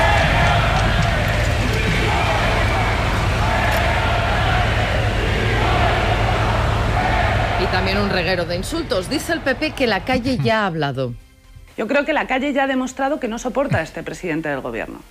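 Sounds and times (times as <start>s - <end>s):
large outdoor crowd booing and jeering: 0.0s - 10.2s
speech: 8.0s - 11.2s, 11.8s - 15.0s.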